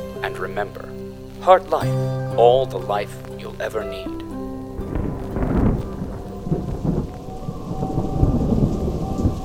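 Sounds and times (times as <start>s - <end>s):
steady heavy rain: 0.0s - 9.4s
speech: 0.2s - 4.3s
deep rolling thunder: 4.8s - 9.4s.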